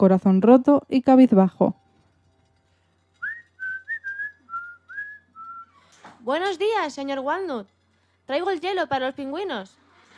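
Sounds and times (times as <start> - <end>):
speech: 0.0 - 1.8, 6.2 - 9.8
low steady hum: 0.0 - 10.1
person whistling a cheerful tune while entering a shop: 3.2 - 5.8.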